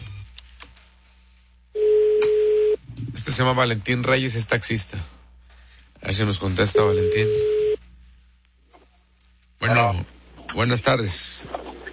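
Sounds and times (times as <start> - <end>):
loud steady single-pitched telephone ringing tone: 1.8 - 2.8, 6.7 - 7.8
speech: 3.4 - 5.2, 6.1 - 7.6, 9.7 - 11.6.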